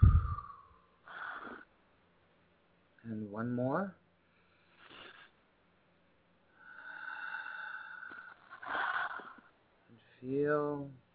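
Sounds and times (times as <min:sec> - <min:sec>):
deep breath in through the nose, out through the mouth: 0:00.0 - 0:01.7, 0:04.2 - 0:05.4, 0:06.5 - 0:09.5
speech: 0:03.4 - 0:04.0, 0:10.2 - 0:11.0.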